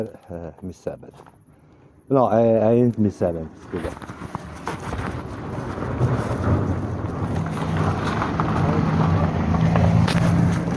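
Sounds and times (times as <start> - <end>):
speech: 0.0 - 1.4, 2.1 - 4.5
car passing by with engine rumble and road noise: 5.4 - 10.7.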